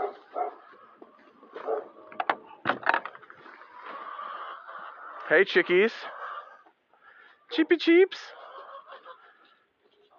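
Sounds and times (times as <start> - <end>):
guard dog barking near chickens: 0.0 - 0.6, 1.6 - 2.0
speech: 5.3 - 6.2, 7.5 - 8.4.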